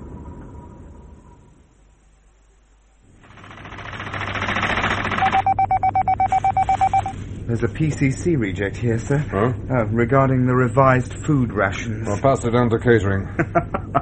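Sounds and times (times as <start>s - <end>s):
missile conveyor machinery hum: 0.0s - 13.9s
missile conveyor machinery mechanical rumble and hiss: 0.0s - 13.9s
missile conveyor machinery rhythmic clattering pulses: 3.1s - 11.2s
speech: 7.5s - 13.9s
laughter: 13.2s - 13.9s.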